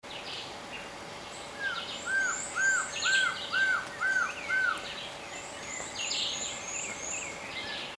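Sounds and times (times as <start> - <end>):
Trogon rufus calling: 1.6 - 7.9.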